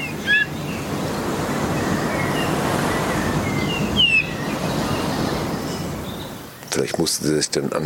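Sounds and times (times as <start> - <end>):
island bullfinch whistled calls: 0.0 - 0.8, 1.8 - 6.2
surf roaring: 0.0 - 6.6
speech: 6.8 - 7.8.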